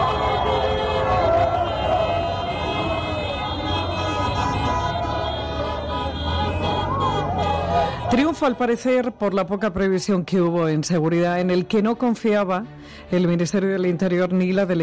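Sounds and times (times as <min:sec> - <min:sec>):
people chanting through a police patrol car megaphone: 0:00.0 - 0:08.5
dense noisy crowd celebrating a national team victory: 0:00.0 - 0:09.5
speech: 0:08.1 - 0:14.8.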